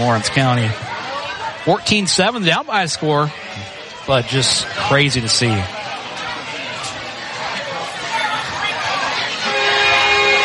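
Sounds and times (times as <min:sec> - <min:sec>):
speech: 0:00.0 - 0:00.9, 0:01.6 - 0:05.9
crowd murmuring and chattering: 0:00.0 - 0:10.4
train horn from a nearby rail line: 0:09.4 - 0:10.4.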